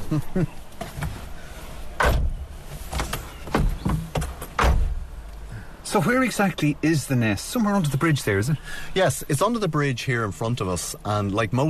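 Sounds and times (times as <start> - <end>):
low outdoor rumble: 0.0 - 11.6
speech: 0.1 - 0.6, 5.9 - 11.6
car doors opening and shutting by a river: 0.7 - 5.5.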